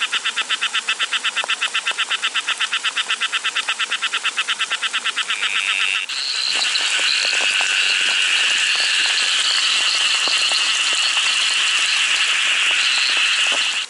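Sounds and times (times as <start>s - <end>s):
green-thighed frog calling: 0.0s - 13.8s
high continuous drone: 6.0s - 13.8s.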